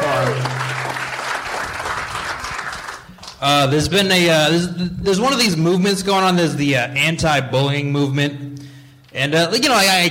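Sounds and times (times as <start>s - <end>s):
audience applauding as a comedian comes to the stage: 0.0s - 3.4s
speech: 3.4s - 8.4s, 9.2s - 10.0s.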